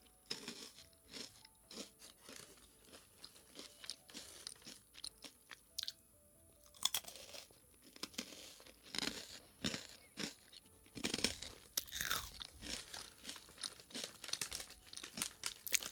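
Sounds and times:
crunching and chewing of crunchy french fries and snacks: 0:00.0 - 0:06.0, 0:06.6 - 0:15.9
packaging crinkling: 0:12.4 - 0:15.9.

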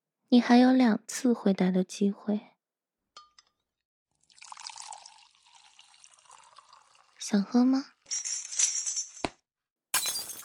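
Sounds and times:
speech: 0:00.3 - 0:02.5, 0:07.3 - 0:08.3
water pouring from a jug into a cup: 0:04.1 - 0:07.2
light glassy clinks: 0:08.1 - 0:09.3, 0:10.0 - 0:10.4
drinking glass breaking with scattering shards: 0:08.1 - 0:09.4, 0:10.0 - 0:10.4.

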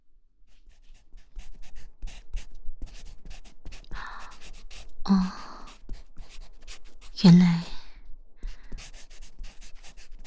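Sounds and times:
pen scratching across paper: 0:00.6 - 0:04.9, 0:05.6 - 0:07.2, 0:08.4 - 0:10.2
speech: 0:05.1 - 0:05.4, 0:07.2 - 0:07.7.

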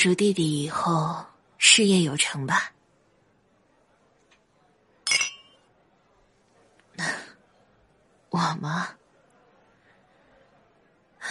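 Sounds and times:
speech: 0:00.0 - 0:02.8, 0:08.4 - 0:09.0
glasses clinking in a toast: 0:05.0 - 0:05.7.

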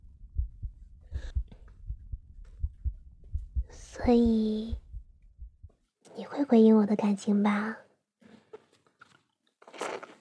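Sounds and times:
fast heartbeat: 0:00.0 - 0:05.8
speech: 0:04.0 - 0:04.8, 0:06.2 - 0:07.8.

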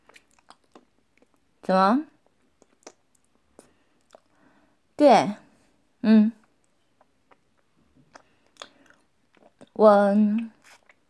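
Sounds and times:
chewing while eating breakfast: 0:00.0 - 0:01.4, 0:02.2 - 0:04.4, 0:06.4 - 0:09.8, 0:10.4 - 0:11.0
speech: 0:01.6 - 0:02.1, 0:05.0 - 0:05.4, 0:06.0 - 0:06.4, 0:09.8 - 0:10.6.

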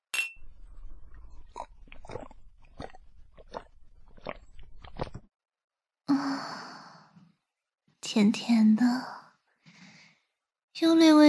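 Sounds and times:
red wine glasses clinking in a toast: 0:00.1 - 0:00.4
soft crunching and mouth sounds: 0:00.8 - 0:05.3
speech: 0:08.2 - 0:09.2, 0:10.8 - 0:11.2.

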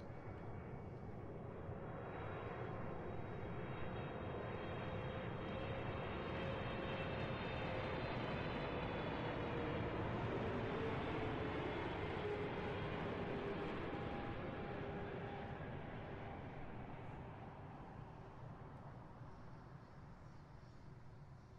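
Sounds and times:
airplane engine roar heard from inside the cabin during takeoff: 0:00.2 - 0:19.3
high airplane engine whine during takeoff: 0:02.3 - 0:19.3.

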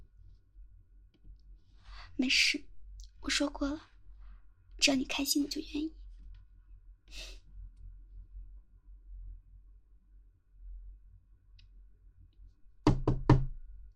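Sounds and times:
low hum: 0:00.0 - 0:13.9
speech: 0:02.2 - 0:03.9, 0:04.8 - 0:06.0, 0:07.1 - 0:07.4
quick firm knocks on a door: 0:12.8 - 0:13.6.

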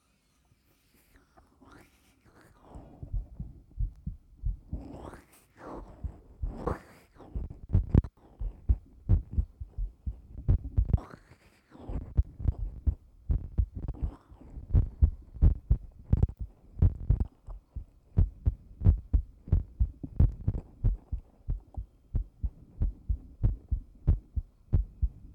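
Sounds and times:
fast heartbeat heard with an ear pressed to someone's chest: 0:03.0 - 0:04.9, 0:05.9 - 0:06.8, 0:07.4 - 0:11.0, 0:12.0 - 0:25.3.

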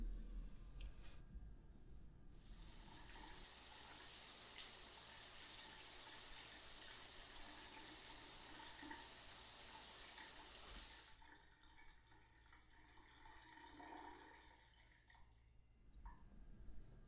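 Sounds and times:
quiet noise: 0:00.0 - 0:17.0
water running in a shower: 0:02.4 - 0:11.2.

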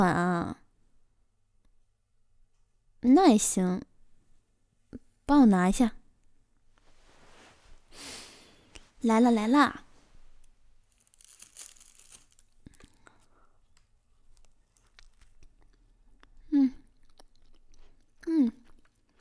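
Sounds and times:
speech: 0:00.0 - 0:00.6, 0:03.0 - 0:03.9, 0:05.3 - 0:06.0, 0:09.0 - 0:09.8, 0:18.3 - 0:18.6
crinkling or tearing: 0:10.4 - 0:13.3, 0:14.2 - 0:15.9
chewing on a steamed bun: 0:11.0 - 0:19.2.

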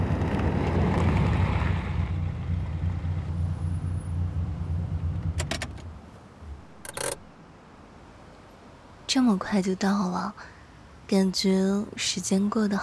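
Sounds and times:
car driving on a road: 0:00.0 - 0:07.4
rattling bursts: 0:00.3 - 0:07.4
speech: 0:09.2 - 0:12.8.

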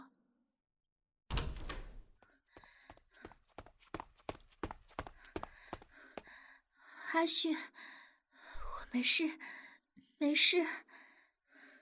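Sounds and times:
wooden door pushed open: 0:01.3 - 0:02.2
speech: 0:07.2 - 0:08.0, 0:08.9 - 0:11.0.

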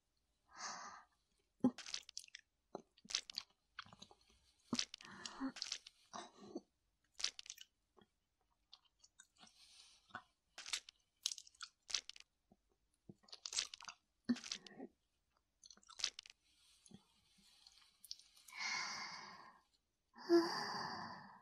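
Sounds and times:
wet crunching and chewing of a human heart: 0:01.7 - 0:06.0, 0:07.2 - 0:08.1, 0:08.7 - 0:12.4, 0:13.2 - 0:14.8, 0:15.6 - 0:17.0, 0:17.6 - 0:18.3
breathy sighs: 0:18.5 - 0:19.6, 0:20.2 - 0:21.4.

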